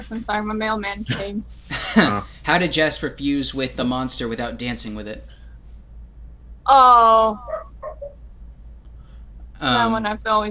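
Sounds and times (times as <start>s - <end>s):
speech: 0.0s - 5.4s, 6.6s - 7.6s, 9.6s - 10.5s
low hum: 0.0s - 10.5s
laughter: 1.1s - 2.2s
dog barking: 7.4s - 8.2s.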